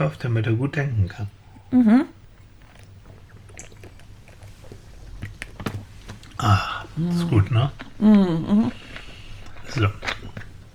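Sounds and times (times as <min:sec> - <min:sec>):
speech: 0:00.0 - 0:02.2, 0:06.4 - 0:08.8, 0:09.8 - 0:10.2
person drinking with soft sips and swallowing: 0:01.5 - 0:10.7
wet mouth clicks: 0:02.4 - 0:10.6
voice humming: 0:06.4 - 0:09.0.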